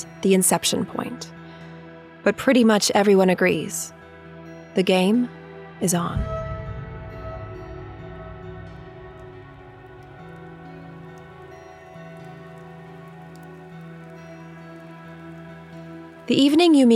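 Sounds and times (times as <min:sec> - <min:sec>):
speech: 0:00.0 - 0:01.4, 0:02.2 - 0:04.0, 0:04.7 - 0:06.4, 0:16.3 - 0:16.9
low sustained hum: 0:06.1 - 0:16.4
steady rain pattering on a surface at night: 0:08.7 - 0:16.9.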